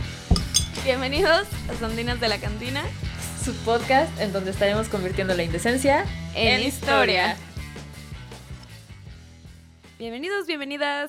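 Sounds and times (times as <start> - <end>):
glasses clinking in a toast: 0.3 - 1.0
speech: 0.8 - 7.5, 10.0 - 11.0.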